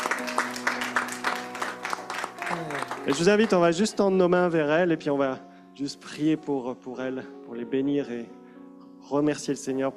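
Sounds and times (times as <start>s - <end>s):
church congregation applauding: 0.0s - 4.0s
speech: 2.6s - 8.4s, 9.0s - 9.9s.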